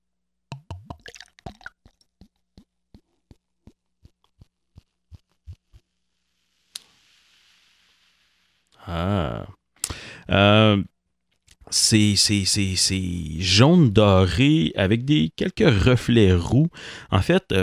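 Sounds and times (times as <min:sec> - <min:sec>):
pale ale poured from a bottle into a glass: 0:00.5 - 0:01.8
pale ale fizzing in a glass: 0:00.9 - 0:01.7
speech: 0:10.3 - 0:10.9, 0:11.9 - 0:17.6.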